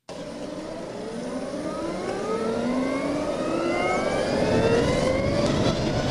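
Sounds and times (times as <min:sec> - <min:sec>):
Harley-Davidson LiveWire electric motorcycle accelerating with a high whine: 0:00.1 - 0:06.0
rush of wind noise: 0:03.1 - 0:06.0.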